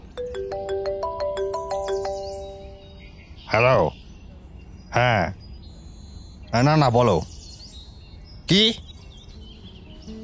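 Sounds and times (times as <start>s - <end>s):
mobile phone ringtone with bright electronic beeps: 0.0s - 2.8s
speech: 3.5s - 4.0s, 6.6s - 7.3s, 8.5s - 8.9s.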